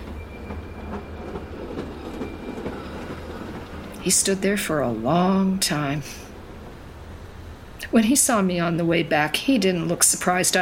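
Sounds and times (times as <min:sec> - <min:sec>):
train wheels clacking over the rail joints: 0:00.0 - 0:08.4
train rolling with a steady low rumble: 0:00.0 - 0:10.6
speech: 0:04.0 - 0:06.2, 0:07.9 - 0:10.6.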